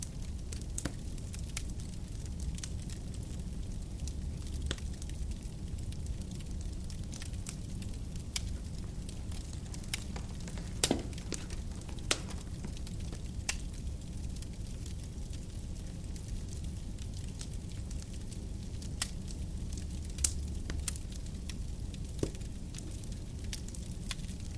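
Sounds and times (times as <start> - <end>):
fire rumbling: 0.0 - 24.5.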